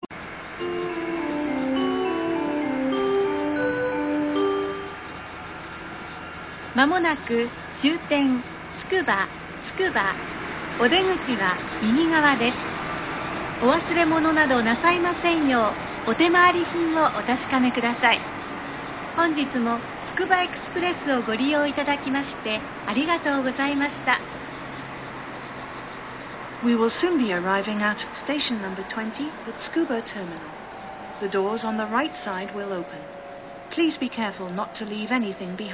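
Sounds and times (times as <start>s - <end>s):
onboard train announcement on semi-rapid train: 0.1s - 25.2s, 25.9s - 35.7s
onboard train chime before arrival at terminal station: 0.5s - 6.4s, 30.2s - 35.7s.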